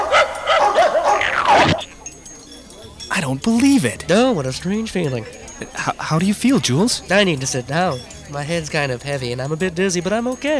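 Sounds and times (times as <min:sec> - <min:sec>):
several small dogs barking and yipping excitedly: 0:00.0 - 0:03.0
speech: 0:03.3 - 0:10.5.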